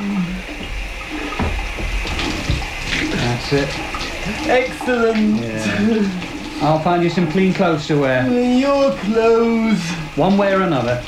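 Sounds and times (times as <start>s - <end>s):
shower water running: 0.0s - 11.0s
faint knocks: 0.4s - 4.2s
speech: 3.5s - 11.0s.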